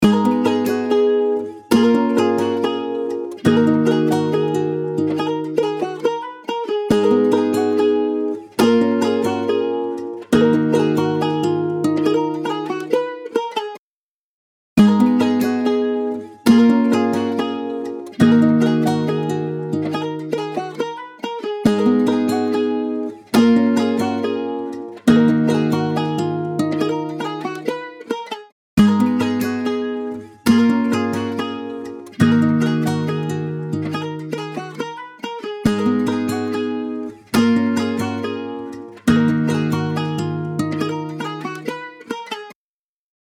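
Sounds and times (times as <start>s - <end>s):
acoustic guitar stack: 0.0s - 13.7s, 14.8s - 42.6s.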